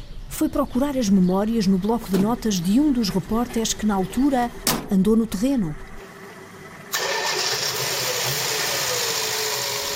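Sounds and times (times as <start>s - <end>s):
speech: 0.4s - 5.9s
old Renault 4L radio reporting car engine cranking and idling roughly: 2.1s - 9.9s.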